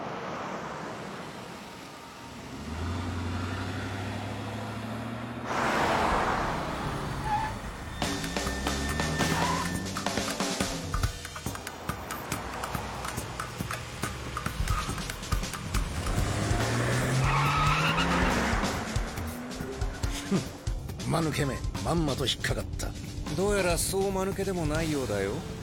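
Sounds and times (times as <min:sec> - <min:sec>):
vehicles roaring past: 0:00.0 - 0:21.4
car engines revving in a car chase: 0:00.0 - 0:21.6
harsh tire-like screeches: 0:02.2 - 0:10.6, 0:12.2 - 0:20.4
speech: 0:21.2 - 0:25.6.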